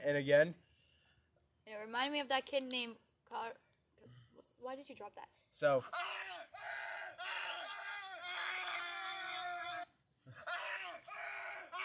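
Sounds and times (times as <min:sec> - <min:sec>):
speech: 0:00.0 - 0:00.6, 0:01.8 - 0:03.6, 0:04.6 - 0:06.9
two people screaming at each other: 0:05.9 - 0:11.8.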